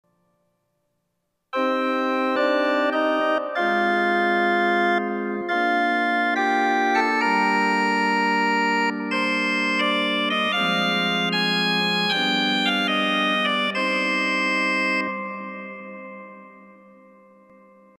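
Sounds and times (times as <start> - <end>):
pipe organ with Sesquialtera and Gedackt 8 stops: 1.6 - 16.2.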